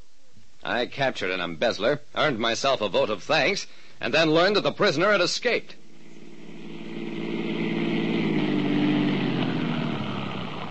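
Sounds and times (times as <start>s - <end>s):
speech: 0.7s - 5.8s
police car engine rumbling as the car eases to a stop: 5.9s - 10.6s.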